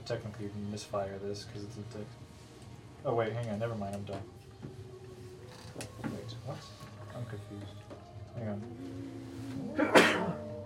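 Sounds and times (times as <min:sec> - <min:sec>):
speech: 0:00.1 - 0:02.3, 0:03.0 - 0:04.9, 0:05.8 - 0:10.4
sneeze: 0:09.7 - 0:10.4.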